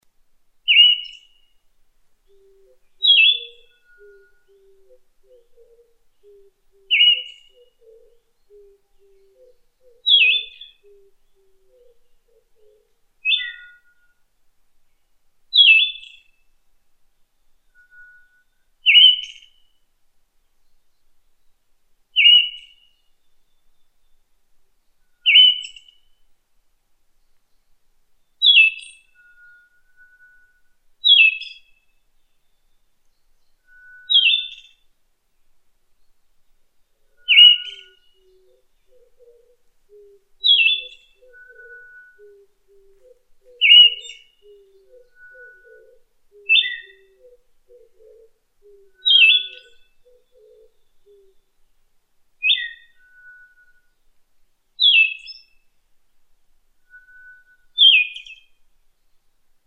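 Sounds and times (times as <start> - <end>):
mamijiro bird calling: 0.7 - 1.5, 2.2 - 14.2, 15.5 - 16.4, 17.7 - 19.7, 22.2 - 23.0, 25.0 - 26.2, 28.4 - 31.8, 33.5 - 34.8, 37.0 - 51.5, 52.4 - 54.0, 54.8 - 55.6, 56.9 - 58.6.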